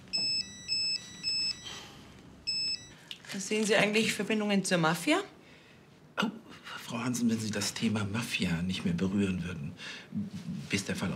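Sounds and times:
phone ringtone for an incoming call: 0.1s - 3.0s
speech: 3.3s - 5.4s, 7.0s - 11.1s.

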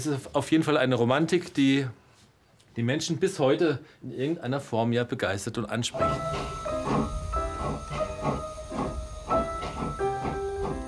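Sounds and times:
speech: 0.0s - 2.0s, 2.8s - 7.2s
small steam train chugging with hissing steam: 6.0s - 10.8s.

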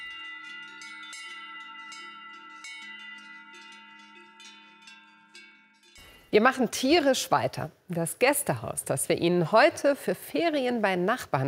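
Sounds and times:
cowbells clanging: 0.0s - 6.6s
speech: 6.3s - 11.4s.

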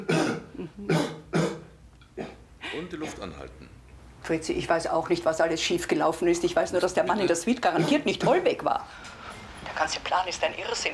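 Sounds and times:
speech: 0.0s - 1.2s, 2.8s - 10.9s
person coughing harshly: 0.0s - 3.4s.

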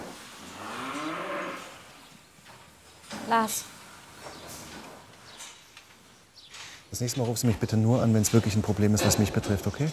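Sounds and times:
cow mooing in a cattle stall: 0.5s - 1.8s
speech: 3.3s - 3.8s, 6.9s - 9.9s.

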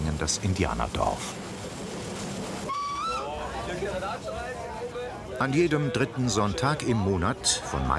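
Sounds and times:
historic museum train rumbling on rails: 0.0s - 5.0s
speech: 0.2s - 1.5s, 3.7s - 7.9s
wavering high whistle-like tone: 2.7s - 3.3s.

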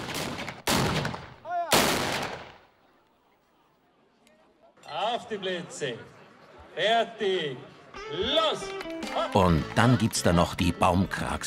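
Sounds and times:
loud booming cannon shots: 0.0s - 2.6s
speech: 5.3s - 6.2s, 6.8s - 11.4s.

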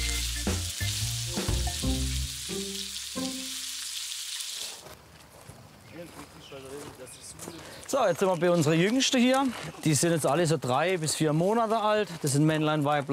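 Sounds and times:
lamb and chicken skewers searing in a hot pan: 0.0s - 4.8s
speech: 7.9s - 13.1s.

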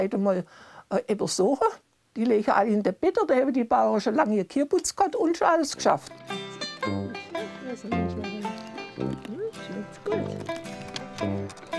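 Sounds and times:
speech: 0.0s - 7.1s, 7.7s - 8.4s
donkeys braying: 5.8s - 11.7s.

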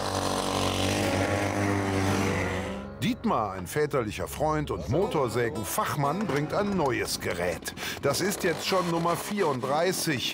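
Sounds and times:
petrol engine of a homemade motorised e-bike running: 0.0s - 9.7s
speech: 3.2s - 10.3s.

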